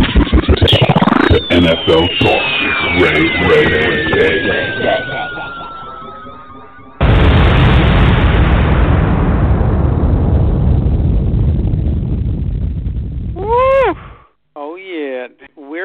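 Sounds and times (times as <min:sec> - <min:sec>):
falling whistle-like tone: 0:00.6 - 0:07.3
explosion sound effect with roaring blast: 0:01.3 - 0:14.3
speech: 0:01.5 - 0:05.0.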